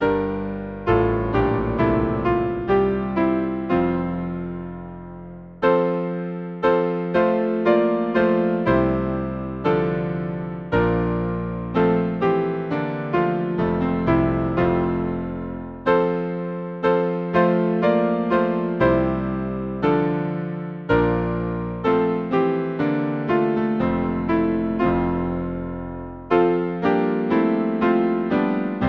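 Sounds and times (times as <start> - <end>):
hymn played on piano: 0.0 - 28.8.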